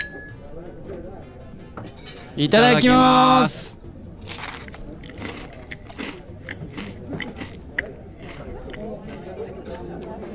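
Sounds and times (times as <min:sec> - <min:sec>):
glasses clinking in a toast: 0:00.0 - 0:00.3
low murmur of voices: 0:00.0 - 0:10.3
speech: 0:01.8 - 0:03.8.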